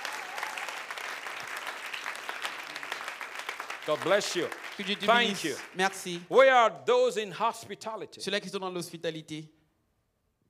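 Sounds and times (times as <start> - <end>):
church congregation clapping hands: 0.0 - 6.3
speech: 3.9 - 9.6.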